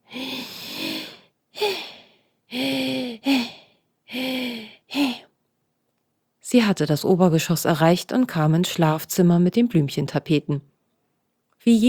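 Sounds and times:
woman panting heavily: 0:00.0 - 0:05.2
speech: 0:06.5 - 0:10.7, 0:11.6 - 0:11.8.

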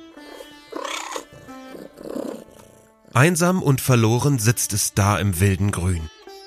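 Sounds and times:
white tiger cub growling: 0:00.2 - 0:03.7
speech: 0:03.2 - 0:06.2.

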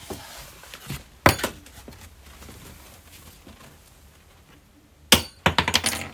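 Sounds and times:
metal key dropping onto a hard floor: 0:05.4 - 0:06.1.

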